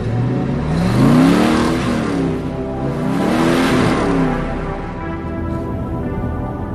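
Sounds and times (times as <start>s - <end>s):
1970 Mustang 428 Super Cobra Jet engine revving: 0.0s - 6.7s.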